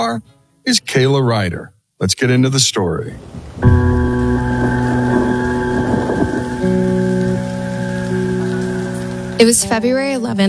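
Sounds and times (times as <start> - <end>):
speech: 0.0 - 3.9, 9.4 - 10.4
steady rain pouring: 2.8 - 10.4
sustained droning musical tones: 3.6 - 10.4.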